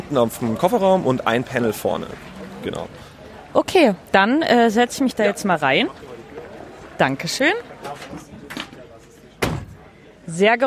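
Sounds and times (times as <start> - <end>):
speech: 0.1 - 6.1, 7.0 - 8.3, 10.4 - 10.6
car door slamming shut: 9.4 - 9.8.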